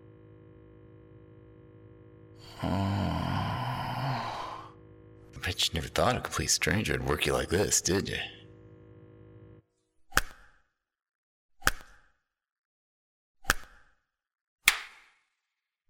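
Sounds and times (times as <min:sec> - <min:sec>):
faint low hum: 0:00.0 - 0:09.6
speech: 0:02.4 - 0:03.0, 0:05.4 - 0:08.4
slaps on skin: 0:14.7 - 0:15.1.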